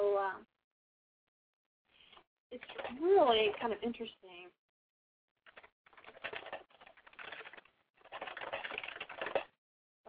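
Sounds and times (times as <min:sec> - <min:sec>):
speech: 0:02.5 - 0:04.6
typing on a computer keyboard: 0:02.6 - 0:03.7, 0:05.5 - 0:09.6.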